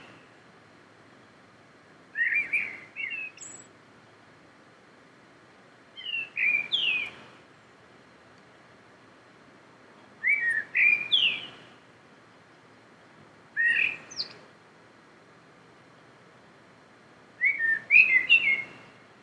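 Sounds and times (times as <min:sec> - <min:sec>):
faint background hiss: 0:00.0 - 0:19.2
common blackbird singing: 0:02.2 - 0:03.7, 0:06.0 - 0:07.2, 0:10.2 - 0:11.6, 0:13.6 - 0:14.4, 0:17.4 - 0:18.8.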